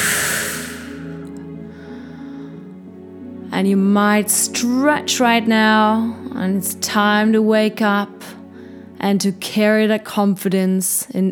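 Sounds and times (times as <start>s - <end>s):
slow deep breath out during a guided relaxation: 0.0s - 2.8s, 8.4s - 9.0s
speech: 3.6s - 8.4s, 9.0s - 11.3s.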